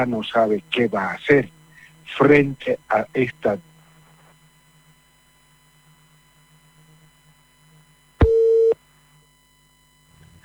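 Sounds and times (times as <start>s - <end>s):
speech: 0.0s - 3.7s
faint hum: 0.0s - 10.4s
telephone busy tone after a dropped call: 8.2s - 8.8s.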